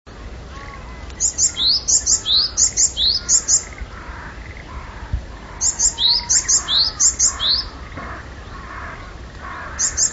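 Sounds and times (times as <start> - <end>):
faint low background noise: 0.1 - 10.1
Japanese tit calling with very high thin notes: 0.8 - 10.1.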